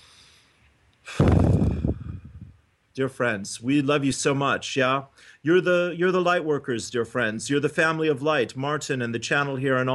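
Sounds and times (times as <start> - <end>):
deep breath: 0.0 - 2.6, 5.1 - 5.4
speech: 3.0 - 9.9.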